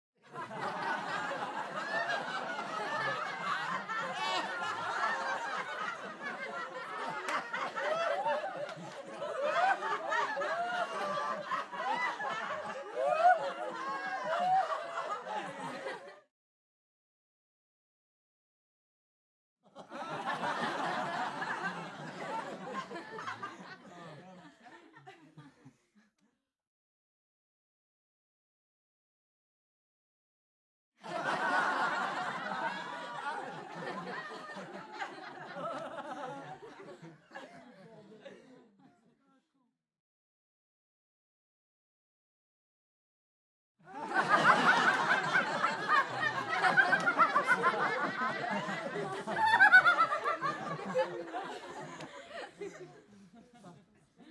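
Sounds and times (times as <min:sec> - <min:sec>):
audience laughing: 0:00.2 - 0:16.3, 0:19.8 - 0:25.8, 0:31.0 - 0:39.1, 0:43.9 - 0:54.3.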